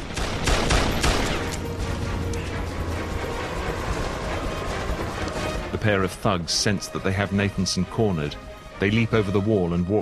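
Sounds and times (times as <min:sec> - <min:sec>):
gunfire as weapons are emptied in a burst: 0:00.0 - 0:01.5
rough noisy rumble: 0:01.0 - 0:06.4
speech: 0:05.8 - 0:10.0.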